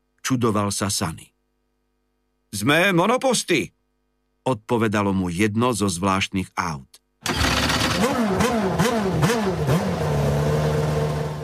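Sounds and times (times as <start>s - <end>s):
speech: 0.3s - 1.3s, 2.5s - 3.8s, 4.4s - 7.4s
formula racing car engine revving: 7.3s - 11.4s.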